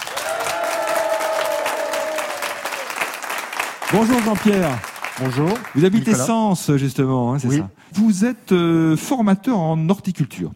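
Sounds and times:
live audience in Sergine France applauding game contestants: 0:00.0 - 0:06.3
speech: 0:03.9 - 0:10.5.

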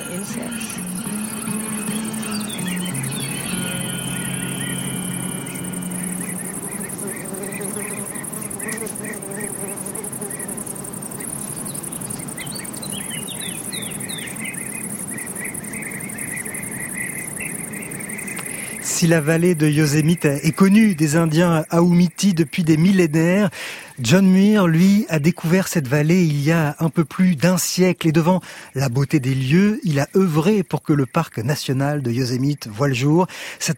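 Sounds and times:
bird chirps and trills: 0:00.0 - 0:21.9
wind moving through willow branches in Yosemite Valley USA: 0:00.0 - 0:22.2
high insect drone: 0:00.0 - 0:33.7
speech: 0:19.0 - 0:33.7.

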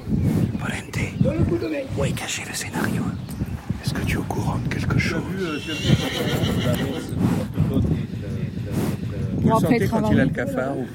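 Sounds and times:
murmur: 0:00.0 - 0:10.9
speech: 0:01.4 - 0:08.8, 0:09.4 - 0:10.9
carriage horse whinnying: 0:05.3 - 0:07.2.

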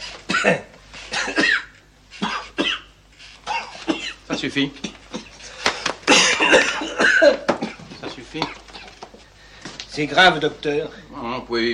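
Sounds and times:
person coughing harshly: 0:00.3 - 0:07.9
speech: 0:00.4 - 0:01.4, 0:04.4 - 0:04.9, 0:08.3 - 0:08.6, 0:10.0 - 0:11.7.

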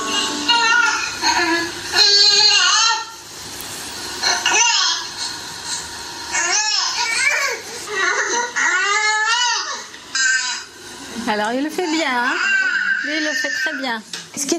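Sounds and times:
several babies crying in whiny bursts with a nasal neh sound: 0:00.1 - 0:03.1, 0:06.3 - 0:10.7, 0:11.9 - 0:14.0
speech: 0:11.3 - 0:14.5.

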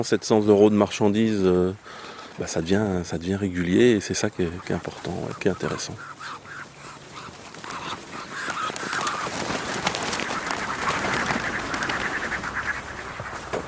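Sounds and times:
speech: 0:00.0 - 0:06.4
wings flapping among a flock of ducks raised for magret: 0:04.4 - 0:13.6
short duck calls: 0:04.5 - 0:13.6.

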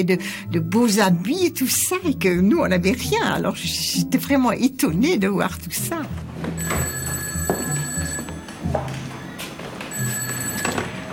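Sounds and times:
speech: 0:00.0 - 0:07.0
telephone bell ringing: 0:06.6 - 0:08.6, 0:09.9 - 0:11.1.

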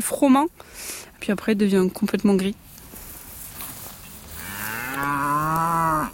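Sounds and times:
speech: 0:00.0 - 0:02.7
Bazadaise cow long drawn-out moo: 0:04.3 - 0:06.1.

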